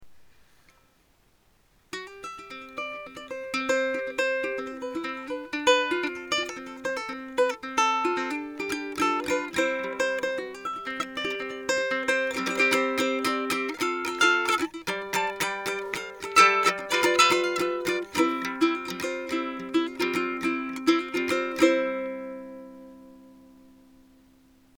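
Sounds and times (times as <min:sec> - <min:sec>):
ukulele playing without preamp: 0:01.9 - 0:24.4.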